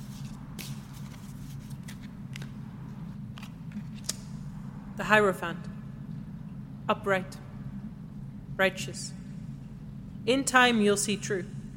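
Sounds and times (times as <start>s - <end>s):
tarot cards being shuffled: 0.0s - 2.5s
steady low hum: 0.0s - 11.7s
speech: 5.0s - 5.7s, 6.9s - 7.4s, 8.6s - 9.2s, 10.3s - 11.6s.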